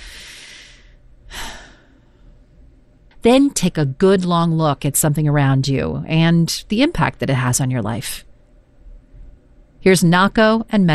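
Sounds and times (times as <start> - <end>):
deep lung-filling breath: 0.0 - 2.4
speech: 3.2 - 8.3, 9.8 - 10.9.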